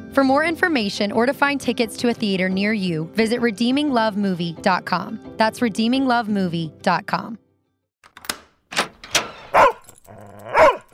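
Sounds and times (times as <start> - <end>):
speech: 0.2 - 7.4
dog barking sharply: 9.5 - 10.9.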